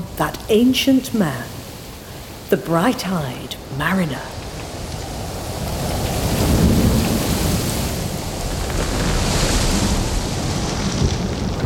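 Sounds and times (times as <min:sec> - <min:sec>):
constant hard rain: 0:00.0 - 0:11.6
speech: 0:00.2 - 0:01.6, 0:02.5 - 0:04.4
deep rumbling thunder: 0:04.3 - 0:11.6.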